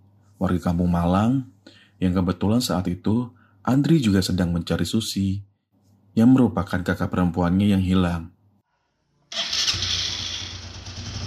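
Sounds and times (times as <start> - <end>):
speech: 0.4 - 5.5, 6.2 - 8.4
motorcycle engine starting: 9.3 - 11.2.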